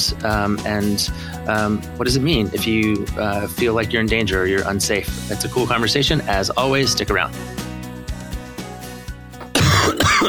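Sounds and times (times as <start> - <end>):
speech: 0.1 - 7.6
person clearing their throat: 9.5 - 10.2
person coughing: 9.5 - 10.2.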